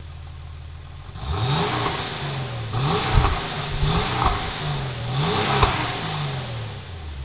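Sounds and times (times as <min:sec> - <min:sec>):
Porsche 993 engine starting: 0:00.0 - 0:07.2.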